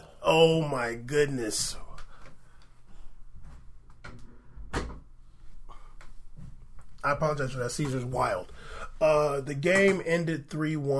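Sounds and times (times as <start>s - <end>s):
speech: 0.3s - 1.8s, 7.0s - 10.9s
door swinging shut with a solid thud: 4.0s - 5.1s.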